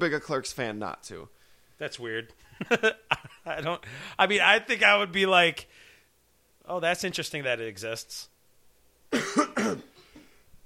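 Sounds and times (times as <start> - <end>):
speech: 0.0 - 5.8, 6.7 - 8.3, 9.1 - 9.9
two people coughing harshly: 9.1 - 10.4.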